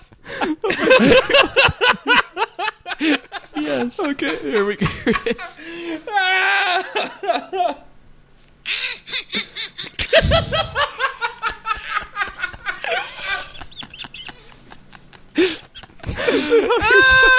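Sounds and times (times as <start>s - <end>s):
sinister laugh sound effect: 0.0s - 7.9s, 8.7s - 17.3s
speech: 0.5s - 1.4s, 4.1s - 6.1s.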